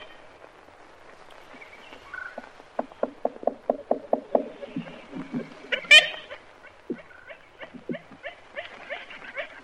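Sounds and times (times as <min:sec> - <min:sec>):
ivory-billed woodpecker nasal tooting kent calls: 0:01.5 - 0:09.6
ivory-billed woodpecker rapid pecking taps: 0:02.2 - 0:06.3, 0:06.9 - 0:08.7.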